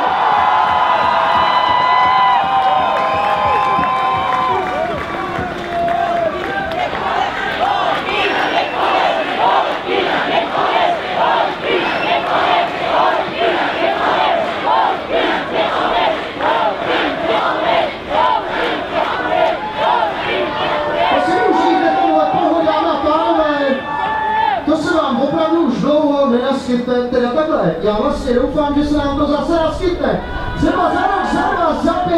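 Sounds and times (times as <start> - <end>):
whoops and shouts: 0.0 - 6.6, 20.8 - 24.7
dense applause: 0.0 - 25.2, 27.8 - 32.1
large crowd roaring and cheering: 0.0 - 32.1.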